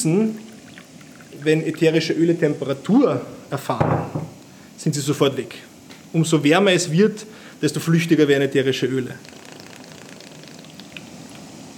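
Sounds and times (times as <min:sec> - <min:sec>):
speech: 0:00.0 - 0:00.4, 0:01.4 - 0:09.4
hydrosol drops dripping into a collecting vessel: 0:00.0 - 0:01.9, 0:09.2 - 0:11.6
steady bubbling watery hiss: 0:00.0 - 0:03.8, 0:04.4 - 0:11.7.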